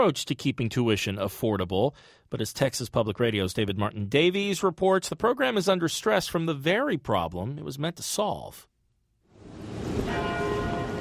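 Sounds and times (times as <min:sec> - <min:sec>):
speech: 0:00.0 - 0:08.7
university tower bells ringing at the University of Texas in Austin: 0:10.0 - 0:11.0.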